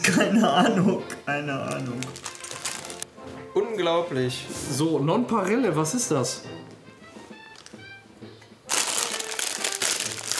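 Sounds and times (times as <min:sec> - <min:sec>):
speech: 0:00.1 - 0:02.3, 0:03.6 - 0:06.8
crinkly plastic snack bag being cut open: 0:01.7 - 0:03.0, 0:07.5 - 0:07.8, 0:08.7 - 0:10.3.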